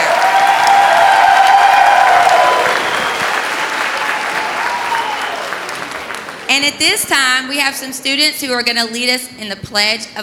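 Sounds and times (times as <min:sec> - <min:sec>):
sizable crowd applauding: 0:00.0 - 0:06.5
speech: 0:06.6 - 0:10.2.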